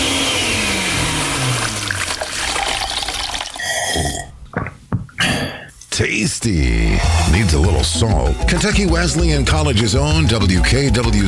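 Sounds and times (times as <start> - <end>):
kitchen blender grinding: 0.0 - 4.0
sloshing gurgling liquid: 1.6 - 3.7
speech: 6.0 - 11.2.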